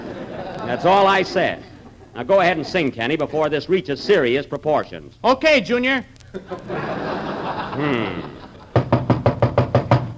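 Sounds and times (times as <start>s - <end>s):
laughter: 0.0s - 3.7s, 6.3s - 8.8s
speech: 0.7s - 8.3s
knocking on a door with a hollow thud: 8.7s - 10.1s.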